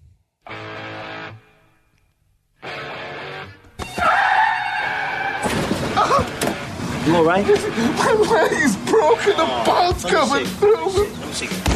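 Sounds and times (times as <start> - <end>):
tire screeches in a car crash sound effect: 3.9 - 7.0
speech: 7.1 - 11.7.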